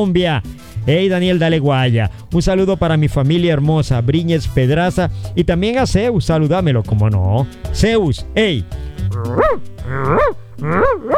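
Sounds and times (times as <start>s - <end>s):
speech: 0.0s - 11.1s
excited dog whining and howl-like yelping: 9.1s - 11.1s.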